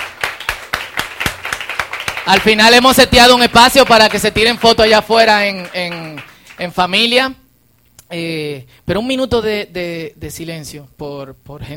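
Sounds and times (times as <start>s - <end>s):
audience at a gathering clapping for the production team: 0.0s - 6.8s
speech: 2.3s - 7.4s, 8.1s - 11.7s.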